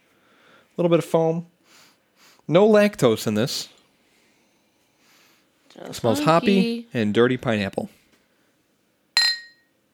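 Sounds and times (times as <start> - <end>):
speech: 0.8 - 1.6, 2.5 - 3.8, 5.8 - 8.0
glasses clinking in a toast: 9.2 - 9.7.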